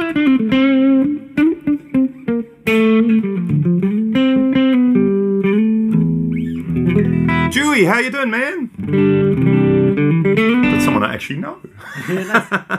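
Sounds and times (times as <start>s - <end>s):
melodic electric guitar line with digital plate-like hall reverb: 0.0s - 7.6s, 8.7s - 11.2s
speech: 0.1s - 0.7s, 7.8s - 9.2s, 11.2s - 12.7s
laughter: 11.7s - 12.7s.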